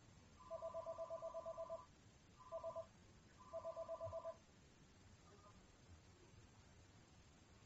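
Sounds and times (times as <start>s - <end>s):
low hum: 0.0s - 7.6s
electronic telephone ringing: 0.4s - 4.4s.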